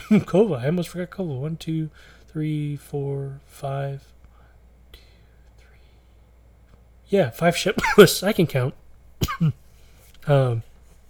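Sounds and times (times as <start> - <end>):
speech: 0.1 - 4.2, 7.1 - 9.6, 10.2 - 10.7
voiced throat-clearing grunt and cough-like throat clear: 9.2 - 9.6.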